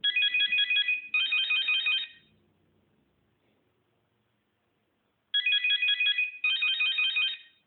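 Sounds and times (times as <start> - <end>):
Nokia 1100 intro ringtone: 0.0 - 2.3, 5.4 - 7.6.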